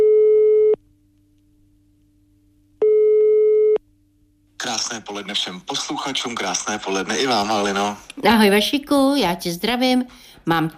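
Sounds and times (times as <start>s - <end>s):
telephone ringback tone while placing a call: 2.8s - 3.8s
speech: 4.9s - 10.7s.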